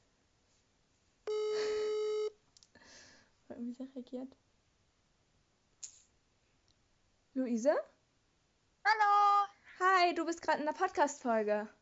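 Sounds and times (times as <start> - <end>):
electronic ringback tone over a speakerphone: 1.3 - 2.3
speech: 3.5 - 4.5, 7.4 - 8.0, 10.0 - 11.7.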